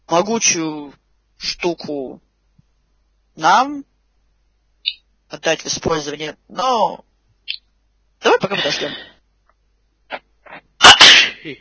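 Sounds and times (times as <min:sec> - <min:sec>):
speech: 0:00.1 - 0:02.2, 0:03.4 - 0:03.9, 0:04.8 - 0:07.6, 0:08.2 - 0:09.1
person sneezing: 0:10.1 - 0:11.5.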